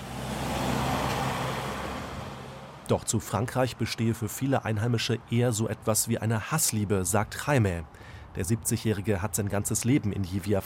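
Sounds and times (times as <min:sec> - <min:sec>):
cars rushing past on a main road in a small town: 0:00.0 - 0:02.9
speech: 0:02.9 - 0:10.6.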